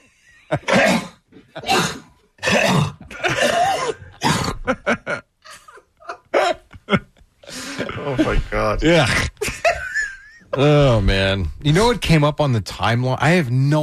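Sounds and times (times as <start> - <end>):
speech: 0.5 - 1.8, 8.7 - 9.3, 10.6 - 13.8
man coughing harshly: 0.5 - 5.1, 6.3 - 9.8.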